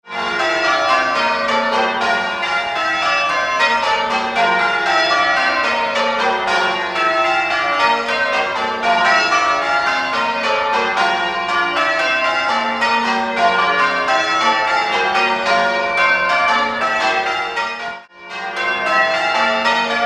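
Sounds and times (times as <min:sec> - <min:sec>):
church bells ringing changes: 0:00.0 - 0:20.0.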